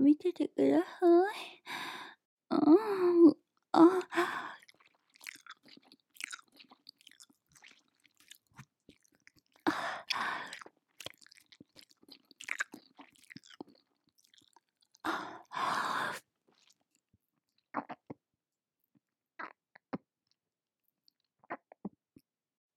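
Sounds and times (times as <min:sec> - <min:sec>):
speech: 0:00.1 - 0:02.0
gulping swallows: 0:03.8 - 0:16.9, 0:17.8 - 0:18.2
wet mouth chewing and squishing: 0:04.0 - 0:15.3, 0:15.9 - 0:16.9.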